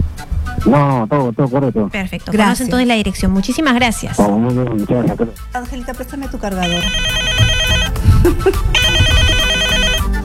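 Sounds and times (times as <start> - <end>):
busy background: 0.0 - 10.2
speech: 0.6 - 7.6, 8.2 - 9.0
telephone ringtone signalling an incoming call: 6.6 - 8.1, 8.7 - 10.2.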